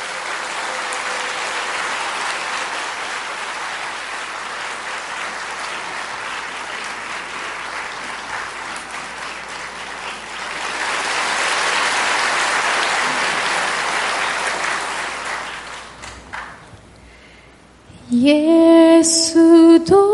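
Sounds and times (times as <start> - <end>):
audience applause welcoming a singer: 0.0 - 16.8
speech: 18.2 - 20.0.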